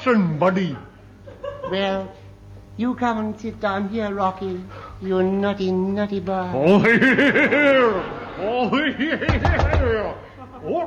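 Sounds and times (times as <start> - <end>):
speech: 0.0 - 0.9, 1.7 - 2.2, 2.8 - 10.8
laughter: 1.2 - 2.0, 6.7 - 10.8
sharp knocks on a door: 9.3 - 10.0.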